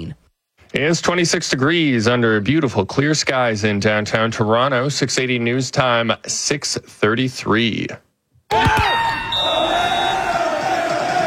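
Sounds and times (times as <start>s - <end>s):
speech: 0.0s - 8.9s
crowd of soccer fans cheering and shouting wildly at watch party: 8.5s - 11.2s
whistles: 9.0s - 10.4s
horn-like tones: 9.1s - 10.9s.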